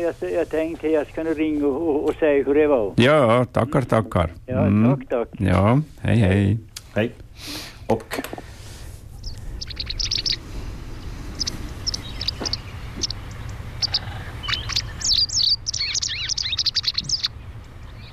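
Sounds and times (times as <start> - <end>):
speech: 0.0 - 8.5
steady low hum: 0.0 - 18.1
wagtail chirping song: 9.1 - 18.1.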